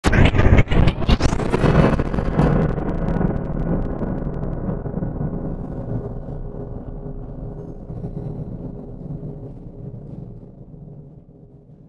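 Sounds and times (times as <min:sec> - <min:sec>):
static: 0:00.0 - 0:06.2.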